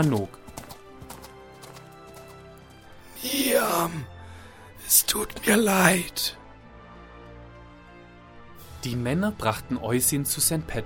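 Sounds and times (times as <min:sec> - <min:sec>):
speech: 0:00.0 - 0:00.4, 0:03.2 - 0:04.1, 0:04.9 - 0:06.4, 0:08.8 - 0:10.8
white horse hoofbeats galloping: 0:00.0 - 0:03.0.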